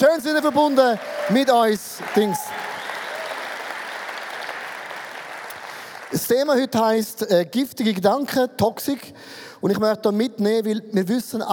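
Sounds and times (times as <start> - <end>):
speech: 0.0 - 2.6, 6.2 - 11.5
audience applause in a church hall: 0.0 - 6.2.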